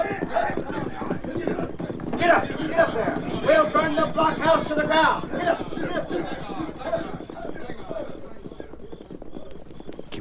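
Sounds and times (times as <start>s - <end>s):
voices shouting: 0.0s - 8.1s
several horses galloping off together: 0.0s - 10.2s
speech: 2.2s - 6.5s.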